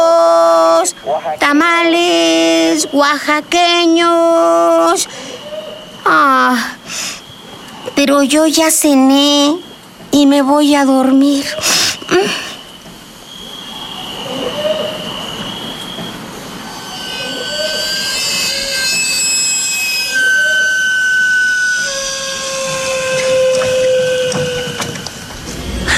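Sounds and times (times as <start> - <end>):
speech: 1.0 - 5.3, 6.0 - 7.2, 8.0 - 12.5
sweet potato vendor's cart steam whistle shrieking: 1.9 - 10.0, 11.4 - 25.9
hiss of escaping steam from a vendor's cart: 6.8 - 7.9, 11.5 - 12.8
rumble: 25.0 - 25.9.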